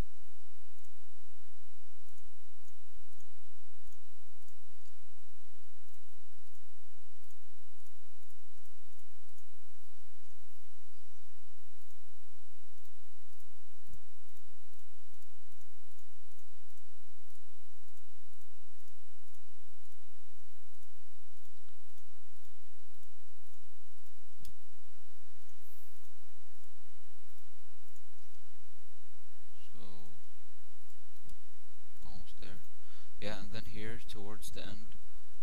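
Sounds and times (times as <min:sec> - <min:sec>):
constant soft hiss: 0:00.0 - 0:35.4
computer mouse clicking while tracing with a paths tool: 0:05.8 - 0:29.4, 0:30.0 - 0:32.8
speech: 0:33.3 - 0:35.0.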